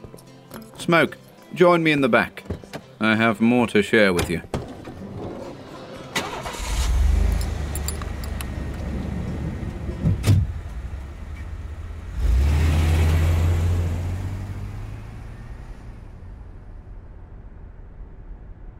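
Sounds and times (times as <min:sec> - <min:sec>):
speech: 0:00.8 - 0:02.4, 0:03.0 - 0:04.5
good-sized car engine starting and driving off: 0:04.1 - 0:18.7.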